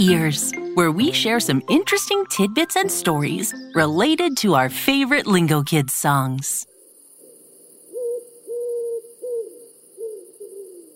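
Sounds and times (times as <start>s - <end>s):
speech: 0.0s - 6.7s
owl hooting: 7.2s - 10.9s.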